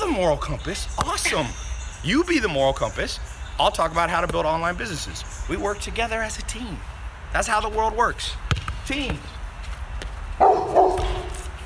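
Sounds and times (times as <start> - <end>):
speech: 0.1 - 9.4
dog barking: 10.4 - 11.4.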